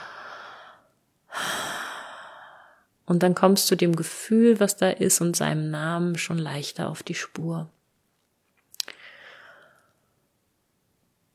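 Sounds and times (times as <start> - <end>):
deep breaths drawn slowly: 0.0 - 2.9, 8.9 - 10.1
speech: 3.1 - 7.8.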